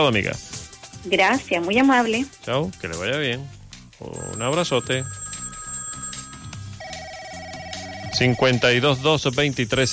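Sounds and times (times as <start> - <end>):
speech: 0.0 - 5.2, 8.1 - 9.9
electronic telephone ring for an incoming call: 4.2 - 9.1.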